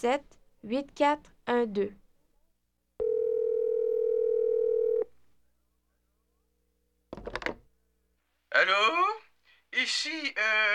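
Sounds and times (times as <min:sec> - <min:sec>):
speech: 0:00.0 - 0:02.0, 0:08.6 - 0:10.7
steady electronic telephone tone: 0:03.0 - 0:05.1.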